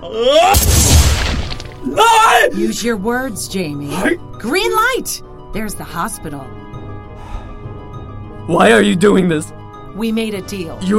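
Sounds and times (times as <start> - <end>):
speech: 0.0 - 0.9, 1.8 - 6.6, 8.5 - 10.9
gunshot from a gun fired in the mouth: 0.6 - 1.8.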